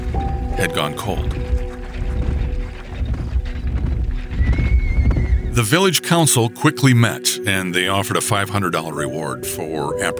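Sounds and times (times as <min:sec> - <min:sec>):
horse hooves clopping: 0:00.0 - 0:05.8
speech: 0:00.6 - 0:01.4, 0:05.6 - 0:10.1
horse whinnying high: 0:04.3 - 0:05.6.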